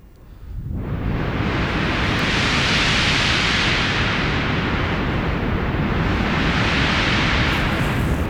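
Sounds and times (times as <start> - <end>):
loud steady broadband rushing synthesizer noise hiss: 1.1 - 8.2.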